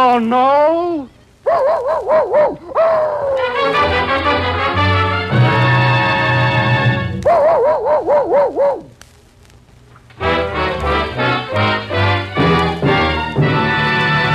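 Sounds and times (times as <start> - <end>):
speech: 0.2 - 4.3
man imitating a dog with yelping barks: 1.5 - 3.6, 7.2 - 8.9
orchestral music: 3.4 - 7.2, 10.2 - 14.3.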